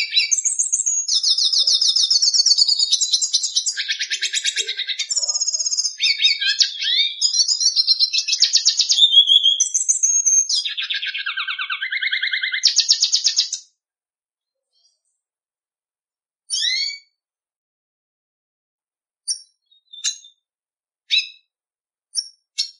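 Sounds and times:
red siskin buzzy trill: 0:00.0 - 0:13.6
red siskin high chirps: 0:00.0 - 0:13.6, 0:16.5 - 0:17.1, 0:19.3 - 0:20.4, 0:21.1 - 0:21.4, 0:22.1 - 0:22.7.

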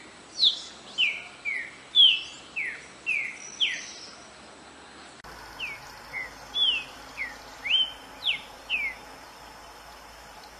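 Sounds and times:
green-winged saltator song: 0:00.4 - 0:04.1, 0:05.6 - 0:09.6.

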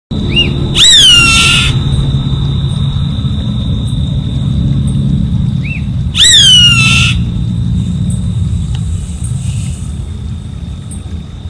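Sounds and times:
low rumble: 0:00.1 - 0:11.4
unbroken high-pitched whine: 0:00.1 - 0:11.4
savanna hawk loud hoarse descending scream: 0:00.3 - 0:02.5, 0:05.6 - 0:07.5.

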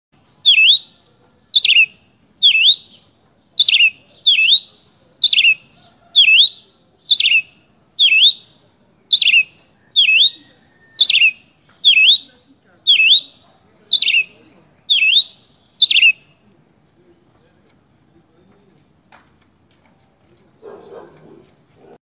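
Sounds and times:
tie-sangue bird singing: 0:00.2 - 0:16.4.

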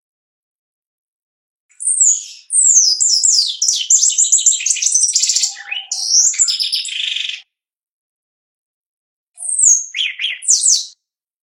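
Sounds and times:
Shiny cowbird singing: 0:01.8 - 0:07.5, 0:09.4 - 0:11.0.

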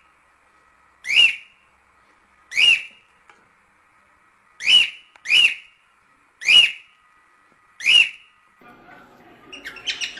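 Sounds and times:
lutino cockatiel whistling: 0:01.0 - 0:01.5, 0:02.5 - 0:03.0, 0:04.6 - 0:05.7, 0:06.4 - 0:06.8, 0:07.8 - 0:08.3, 0:09.4 - 0:10.1.

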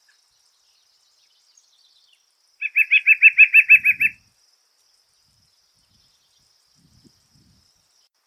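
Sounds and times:
white-breasted woodpecker call: 0:02.6 - 0:04.2.

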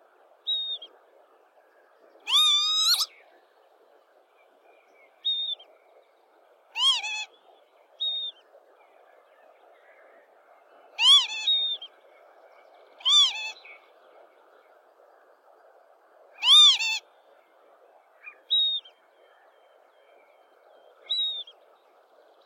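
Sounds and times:
steady background noise: 0:00.0 - 0:22.4
lapwing calls: 0:02.2 - 0:03.1, 0:06.7 - 0:07.4, 0:11.0 - 0:11.9, 0:13.0 - 0:13.8, 0:16.4 - 0:17.0.

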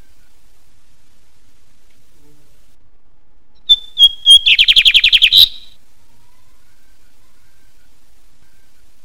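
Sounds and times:
lined seedeater singing: 0:03.6 - 0:05.8.

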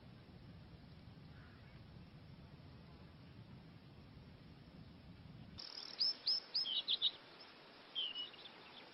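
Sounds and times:
faint hiss: 0:00.0 - 0:08.9
Lawrence's goldfinch singing: 0:05.6 - 0:08.9.

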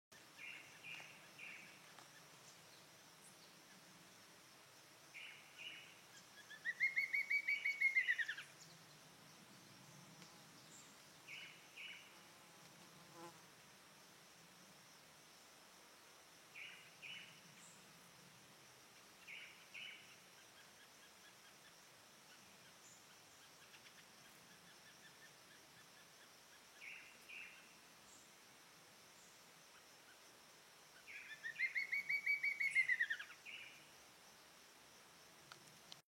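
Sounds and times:
Spot-breasted antwren singing: 0:00.2 - 0:04.0, 0:05.1 - 0:12.2, 0:16.5 - 0:17.9, 0:19.0 - 0:28.4, 0:31.0 - 0:33.9.

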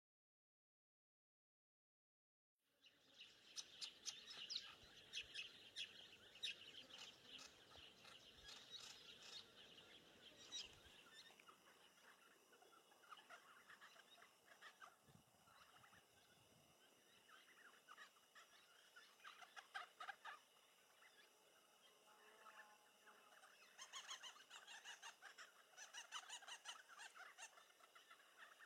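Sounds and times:
Hall's babbler calling: 0:03.6 - 0:16.3, 0:17.1 - 0:20.4, 0:23.6 - 0:28.6.

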